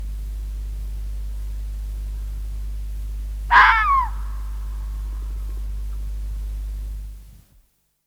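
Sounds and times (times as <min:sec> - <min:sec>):
steady low hum: 0:00.0 - 0:07.2
red fox screaming: 0:03.5 - 0:04.6.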